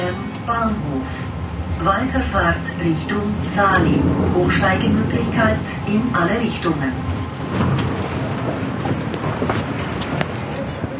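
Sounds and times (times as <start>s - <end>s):
overlapping indistinct voices: 0.0s - 8.9s
traffic in a busy train station square: 0.0s - 10.9s
speech: 0.5s - 7.6s
footsteps: 7.3s - 10.8s.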